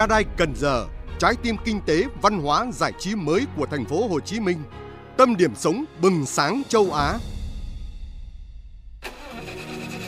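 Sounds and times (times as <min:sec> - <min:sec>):
speech: 0:00.0 - 0:07.3
car engine starting: 0:09.0 - 0:10.0.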